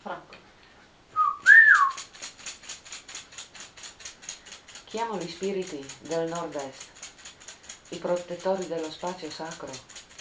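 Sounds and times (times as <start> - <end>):
person whistling: 1.2 - 2.0
speech: 4.9 - 7.0, 7.9 - 9.9.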